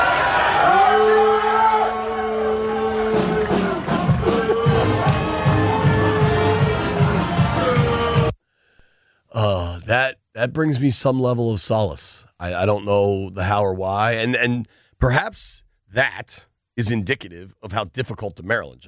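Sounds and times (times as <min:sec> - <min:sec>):
crowd booing: 0:00.0 - 0:08.3
speech: 0:10.4 - 0:18.8.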